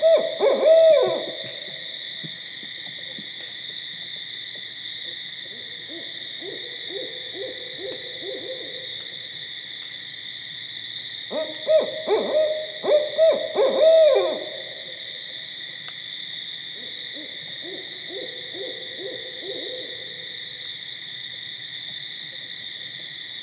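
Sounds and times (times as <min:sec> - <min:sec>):
barred owl hooting: 0:00.0 - 0:01.5, 0:05.9 - 0:08.8, 0:11.3 - 0:14.7, 0:16.8 - 0:20.0.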